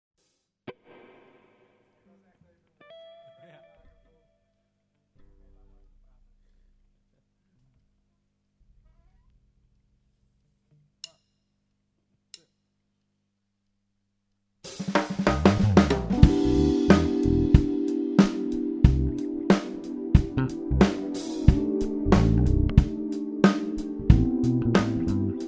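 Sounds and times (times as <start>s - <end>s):
musical groove at 92 BPM in Em7: 14.7s - 25.4s.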